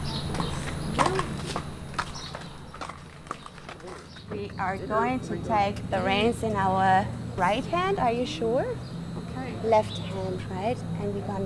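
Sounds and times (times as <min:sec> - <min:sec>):
horse hooves walking on soft ground into an arena: 0:00.0 - 0:04.8
speech: 0:04.6 - 0:09.0, 0:09.6 - 0:11.4.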